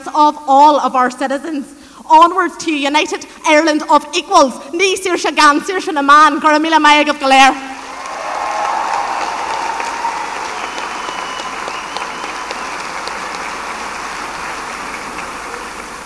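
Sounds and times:
speech: 0:00.1 - 0:07.7
large audience applause after a speech: 0:07.8 - 0:16.0.

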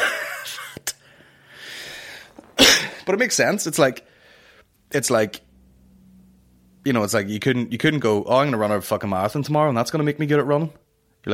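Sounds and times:
sharp catches of breath: 0:01.0 - 0:02.4, 0:04.0 - 0:04.8
speech: 0:03.1 - 0:04.1, 0:04.9 - 0:05.5, 0:06.8 - 0:11.3.

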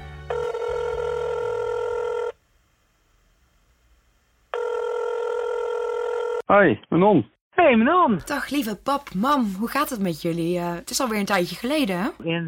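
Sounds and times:
electronic telephone ringing tones of an outgoing call: 0:00.3 - 0:02.4, 0:04.5 - 0:06.4
speech: 0:06.5 - 0:12.4.

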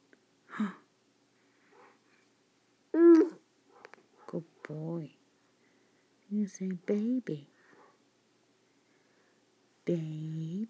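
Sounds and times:
speech: 0:00.6 - 0:00.8, 0:04.3 - 0:05.2, 0:06.3 - 0:07.5, 0:09.9 - 0:10.4
dog barking: 0:01.7 - 0:02.0, 0:03.7 - 0:04.7, 0:07.7 - 0:08.0.

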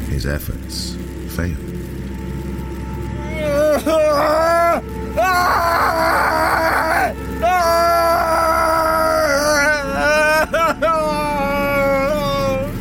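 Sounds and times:
speech: 0:00.2 - 0:01.9, 0:03.8 - 0:06.3
man wailing and moaning in pain: 0:03.2 - 0:12.7.

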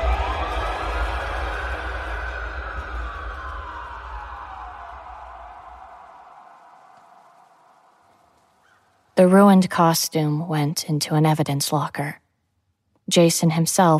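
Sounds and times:
steady low rumble: 0:00.0 - 0:09.1
sirens wailing: 0:00.0 - 0:09.6
speech: 0:09.2 - 0:12.2, 0:13.1 - 0:13.9.

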